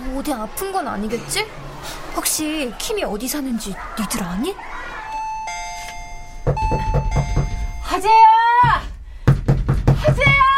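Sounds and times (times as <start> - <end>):
speech: 0.2 - 5.0, 8.0 - 8.9
doorbell chiming with two ringing tones: 5.1 - 8.0
firm knocks on a door: 6.4 - 7.8, 8.6 - 10.5.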